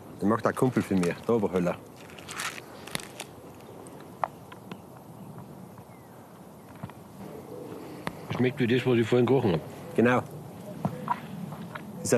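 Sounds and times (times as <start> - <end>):
low steady background: 0.0 - 12.1
speech: 0.2 - 2.1, 8.4 - 10.4
biting and crunching a chocolate bar flavoured with mountain pine: 0.6 - 4.1.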